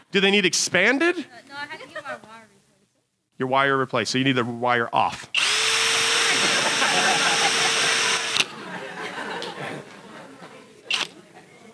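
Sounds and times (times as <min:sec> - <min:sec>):
laughter: 0:00.0 - 0:02.6, 0:05.0 - 0:11.7
speech: 0:00.1 - 0:02.5, 0:03.4 - 0:05.4
Flex cordless power drill whirring: 0:05.2 - 0:10.0, 0:10.8 - 0:11.7.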